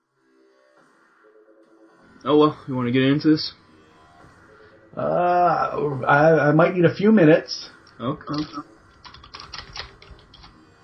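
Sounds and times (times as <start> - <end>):
speech: 2.2 - 3.6, 5.0 - 8.7
loud rapid typing on a keyboard: 8.3 - 10.6.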